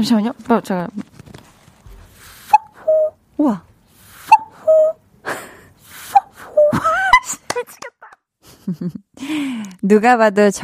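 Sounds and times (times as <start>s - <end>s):
speech: 0.0s - 1.1s, 3.4s - 3.7s, 8.7s - 10.6s
soft rustling and shuffling: 0.0s - 2.4s
person imitating a cuckoo call for a quiz: 2.4s - 3.2s, 4.3s - 5.0s, 6.1s - 7.2s
laughter: 6.4s - 7.5s, 8.4s - 9.0s.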